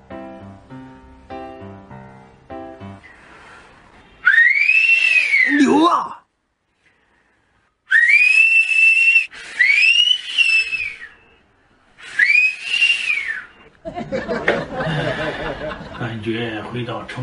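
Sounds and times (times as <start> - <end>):
person whistling sweeping rise-and-fall wolf whistles: 4.2 - 5.7, 7.9 - 11.4, 12.0 - 13.7
laughter: 13.8 - 16.2.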